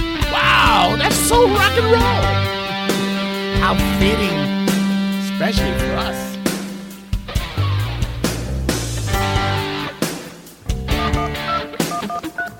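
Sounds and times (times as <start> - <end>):
busy music-like backing: 0.0 - 12.5
speech: 1.4 - 2.6, 3.6 - 4.6, 5.4 - 6.3
electronic telephone call tones beeping: 11.9 - 12.5.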